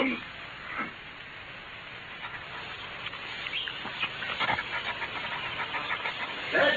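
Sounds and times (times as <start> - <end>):
steady hiss: 0.0 - 6.7
dog vocal bursts: 2.0 - 6.7.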